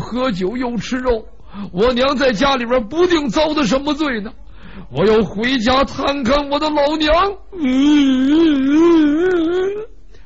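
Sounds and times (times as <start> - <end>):
speech: 0.1 - 9.9
performer's voice imitating a grown man crying: 7.5 - 10.0.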